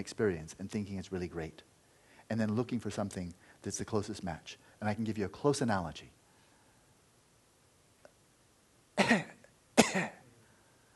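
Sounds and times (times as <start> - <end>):
speech: 0.0 - 6.2, 9.0 - 9.3
harsh coughs from phlegm in the throat: 9.0 - 10.2.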